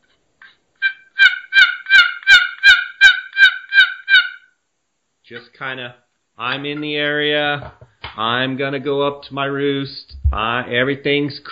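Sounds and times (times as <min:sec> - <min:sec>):
turkey hen loafing call made on a box call: 0:00.8 - 0:04.6
speech: 0:05.3 - 0:11.4.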